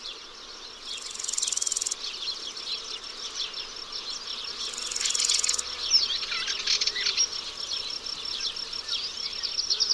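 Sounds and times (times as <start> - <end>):
chorus of grasshoppers and crickets on a dry grassy plain: 0.0 - 9.9.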